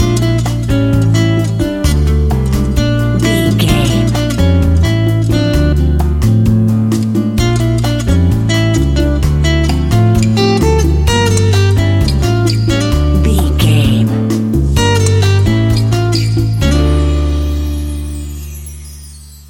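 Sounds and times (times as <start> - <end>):
smooth latin jazz guitar: 0.0 - 18.3.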